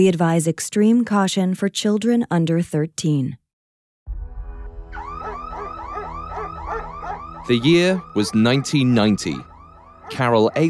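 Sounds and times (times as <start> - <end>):
speech: 0.0 - 3.4, 7.5 - 9.5, 10.1 - 10.6
home security alarm blaring with electronic tone and warbling sweeps: 5.0 - 10.6.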